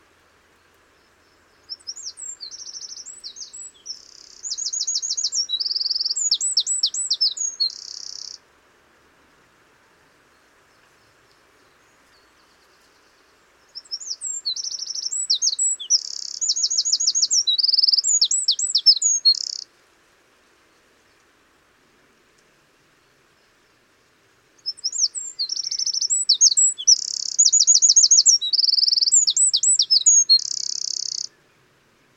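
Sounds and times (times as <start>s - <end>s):
Eurasian wren singing: 1.6s - 8.4s, 13.8s - 19.6s, 24.6s - 31.3s.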